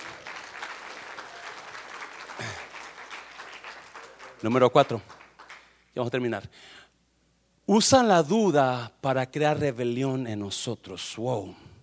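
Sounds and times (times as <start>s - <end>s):
audience applauding loudly: 0.0s - 5.8s
speech: 4.4s - 5.1s, 6.0s - 6.8s, 7.7s - 11.7s.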